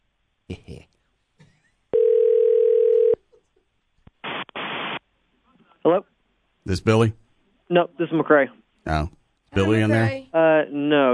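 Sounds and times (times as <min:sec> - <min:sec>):
telephone dial tone while a call is being dialled: 0:02.0 - 0:03.2
speech: 0:06.7 - 0:11.1.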